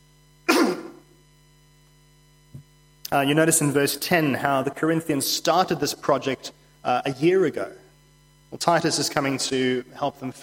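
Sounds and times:
person coughing: 0:00.5 - 0:01.0
speech: 0:03.1 - 0:07.8, 0:08.5 - 0:10.4.

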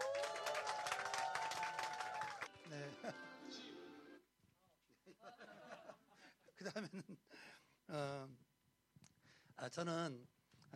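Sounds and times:
crowd clapping to welcome a pastor: 0:00.0 - 0:03.0
speech: 0:02.7 - 0:04.0, 0:05.0 - 0:08.5, 0:09.6 - 0:10.7
laughter: 0:05.0 - 0:07.2.

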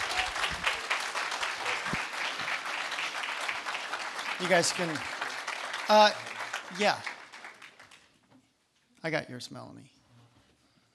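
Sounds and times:
crowd clapping: 0:00.0 - 0:08.2
speech: 0:04.4 - 0:05.2, 0:05.9 - 0:07.1, 0:09.0 - 0:10.0.

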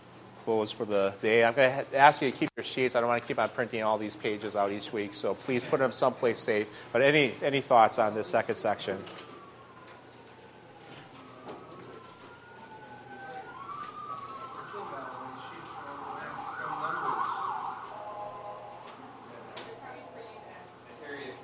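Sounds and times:
steady noise: 0:00.0 - 0:21.4
speech: 0:00.5 - 0:09.3
ambulance siren passing outside: 0:08.4 - 0:21.4.

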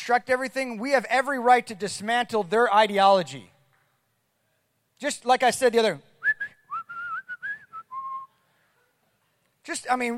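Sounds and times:
speech: 0:00.0 - 0:03.5, 0:05.0 - 0:06.1, 0:09.6 - 0:10.1
person whistling a short wavering tune: 0:06.2 - 0:08.4.

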